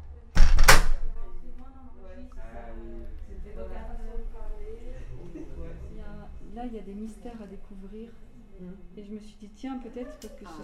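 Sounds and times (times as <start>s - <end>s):
people talking quietly: 0.0s - 10.6s
front door thudding shut: 0.4s - 1.2s
speech: 6.6s - 10.6s.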